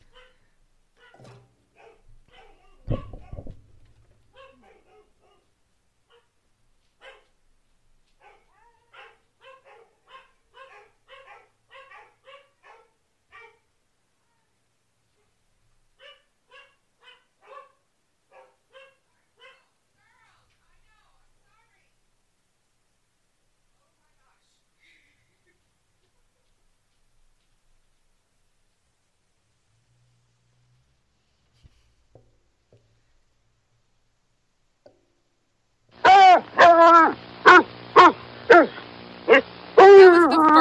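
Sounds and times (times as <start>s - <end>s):
dogs barking frantically in sharp yaps: 0.0s - 3.7s, 4.3s - 6.4s, 7.0s - 7.3s, 8.2s - 13.7s, 16.0s - 19.7s, 36.0s - 40.5s
loud knock or thud: 2.8s - 4.0s.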